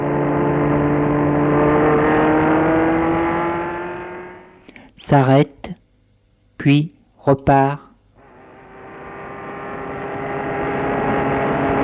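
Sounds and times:
car engine humming while driving: 0.0s - 4.7s, 8.2s - 11.8s
speech: 5.1s - 5.6s, 6.6s - 7.9s.

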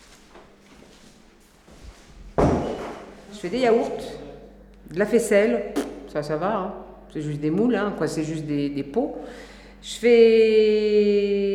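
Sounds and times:
faint shuffling: 0.0s - 3.8s
door slamming shut: 2.4s - 3.0s
speech: 3.4s - 4.2s, 4.9s - 11.5s.

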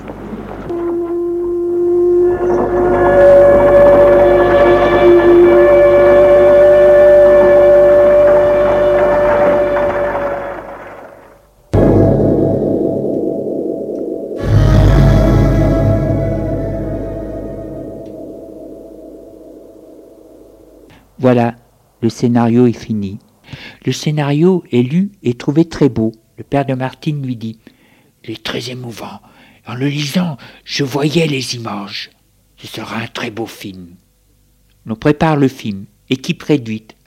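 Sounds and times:
lower sustained hum with a rumbling swell: 0.0s - 21.9s
distant factory sirens: 0.2s - 20.9s
speech: 22.1s - 23.2s, 23.8s - 34.0s, 34.8s - 37.0s.

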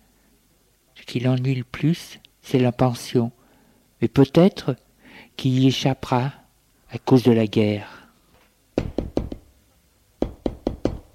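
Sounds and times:
speech: 1.1s - 3.4s, 4.0s - 4.8s, 5.4s - 8.0s
firm knocks on a wooden door: 8.8s - 9.5s, 10.2s - 11.1s.

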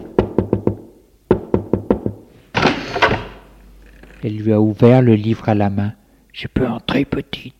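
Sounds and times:
knuckles knocking on a bedroom door: 0.2s - 2.2s
speech: 4.2s - 7.5s.

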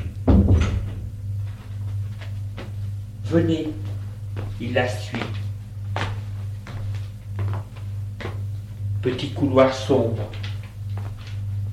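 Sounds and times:
door shutting with a thud: 0.0s - 1.1s
low room hum: 0.0s - 11.7s
speech: 3.3s - 3.9s, 4.6s - 5.4s, 9.0s - 10.4s.

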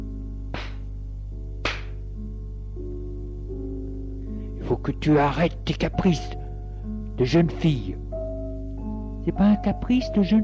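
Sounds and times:
man slapping a young woman across the face: 0.5s - 0.9s, 1.6s - 2.0s
speech: 4.8s - 6.4s, 7.2s - 8.0s, 9.2s - 10.4s.

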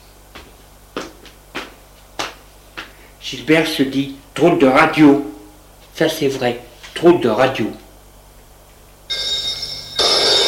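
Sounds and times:
speech: 3.2s - 5.3s, 6.0s - 7.8s
telephone bell ringing with a metallic trill: 9.1s - 10.4s.

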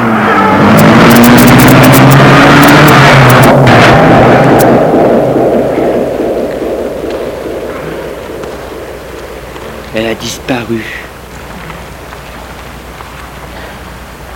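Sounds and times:
large black car engine starting and revving: 0.0s - 8.1s
speech: 10.2s - 11.0s.

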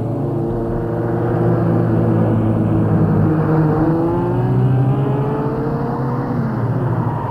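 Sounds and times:
car engine revving and driving toward the centre of Rome: 0.0s - 7.2s.

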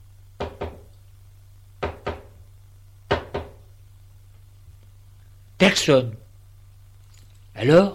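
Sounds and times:
sharp double knocks on a door: 0.4s - 0.9s, 1.8s - 2.4s, 3.1s - 3.6s
speech: 5.6s - 6.2s, 7.6s - 7.9s.

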